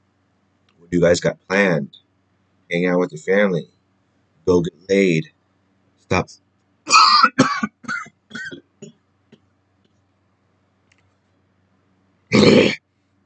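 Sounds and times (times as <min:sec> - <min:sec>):
speech: 0:00.8 - 0:02.0, 0:02.7 - 0:03.8, 0:04.4 - 0:05.4, 0:06.1 - 0:06.4
person coughing: 0:06.9 - 0:08.9, 0:12.3 - 0:12.8
person clearing throat: 0:06.9 - 0:09.0, 0:12.3 - 0:12.8.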